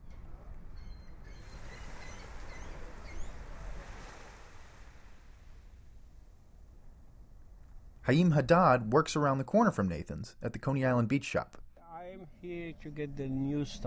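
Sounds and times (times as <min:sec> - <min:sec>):
faint breeze: 0:00.0 - 0:13.8
chilly waves washing against a Coney Island beach in cold weather: 0:01.3 - 0:06.3
speech: 0:08.1 - 0:11.6, 0:12.2 - 0:13.8.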